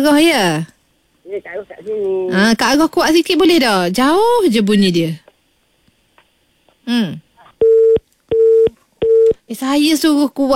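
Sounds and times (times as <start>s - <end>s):
speech: 0.0s - 0.7s, 1.3s - 5.2s, 6.9s - 7.2s, 9.5s - 10.5s
telephone busy tone after a caller's line cut off: 7.6s - 9.4s.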